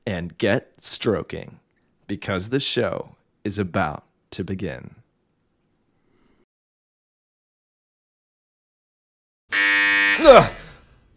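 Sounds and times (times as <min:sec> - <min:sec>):
speech: 0:00.1 - 0:05.0, 0:10.2 - 0:10.6
loud steady electronic buzzer droning: 0:09.5 - 0:10.7.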